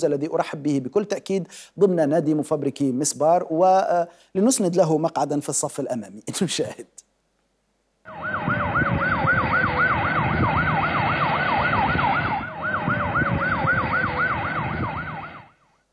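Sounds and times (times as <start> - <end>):
speech: 0.0 - 7.1
loud rumbling road traffic: 8.1 - 15.5
ambulance sirens yelping as ambulances speed past: 8.1 - 15.6.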